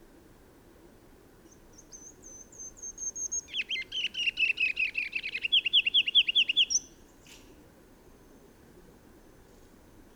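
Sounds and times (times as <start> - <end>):
bird song: 1.5 - 7.0.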